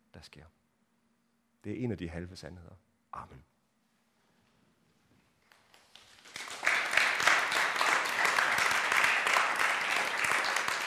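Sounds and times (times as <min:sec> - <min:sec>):
speech: 0:00.2 - 0:00.6, 0:01.6 - 0:03.5
large crowd applauding in a reverberant hall after sermon: 0:05.5 - 0:10.8.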